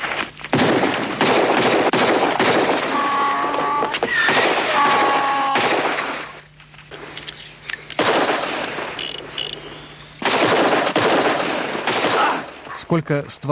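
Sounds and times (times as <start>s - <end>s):
gunshots in rapid bursts: 0.5s - 3.3s, 3.9s - 6.4s, 8.0s - 8.9s, 10.2s - 12.7s
speech: 12.9s - 13.5s.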